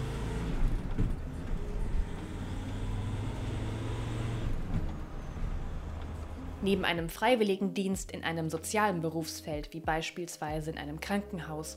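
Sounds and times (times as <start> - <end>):
fully loaded pickup truck engine pulling away: 0.0 - 6.6
speech: 6.6 - 11.7.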